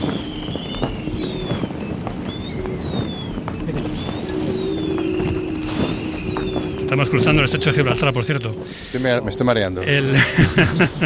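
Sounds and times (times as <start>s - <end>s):
wind howling through the rigging of a large sailing training ship in the Strait of Gibraltar: 0.0s - 11.0s
speech: 6.9s - 11.0s
laughter: 9.9s - 11.0s.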